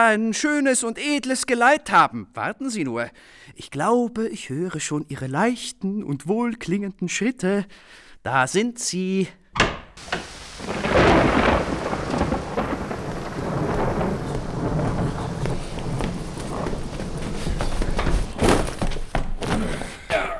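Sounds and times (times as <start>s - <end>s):
speech: 0.0s - 11.3s
steady rain: 10.0s - 18.4s
loud rolling rumble of thunder: 10.0s - 18.5s.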